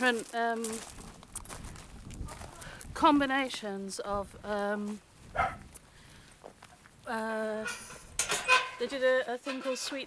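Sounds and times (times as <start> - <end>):
speech: 0.0 - 1.1, 3.0 - 5.6, 7.1 - 8.0, 8.8 - 10.0
neighbour's dog barking: 5.3 - 5.6.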